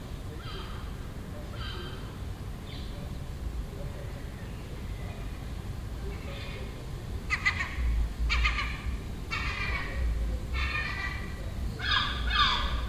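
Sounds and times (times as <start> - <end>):
steady low background rumble: 0.0 - 12.8
gull nesting on a neighbouring roof in Den Haag calling harsh notes: 7.3 - 12.8.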